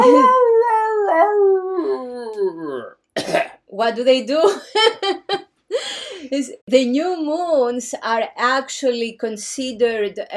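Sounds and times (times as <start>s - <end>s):
wolf howling: 0.0s - 2.6s
speech: 3.8s - 10.3s.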